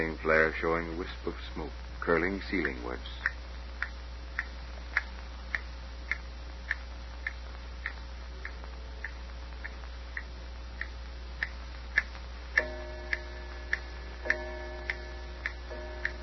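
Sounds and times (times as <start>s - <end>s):
speech: 0.0s - 3.4s
faint low hum: 0.0s - 16.2s
old clock ticking with hammer-like ticks: 2.5s - 16.2s.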